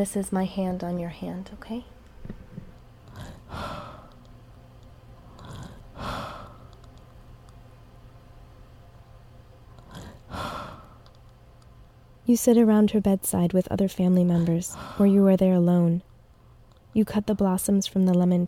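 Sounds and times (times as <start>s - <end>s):
speech: 0.0s - 2.4s, 12.3s - 16.1s, 17.0s - 18.4s
quiet room hum: 0.0s - 18.4s
elderly woman's slow labored raspy breathing at bedside: 3.1s - 4.2s, 5.3s - 6.8s, 9.8s - 11.1s, 14.4s - 15.2s.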